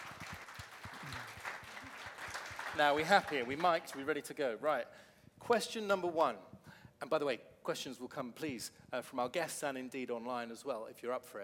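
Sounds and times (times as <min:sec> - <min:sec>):
room full of people applauding: 0:00.0 - 0:04.1
speech: 0:02.8 - 0:11.4.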